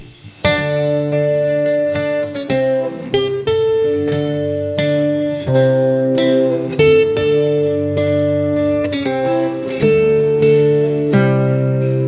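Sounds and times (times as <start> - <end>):
post punk alternative guitar solo: 0.0 - 12.0.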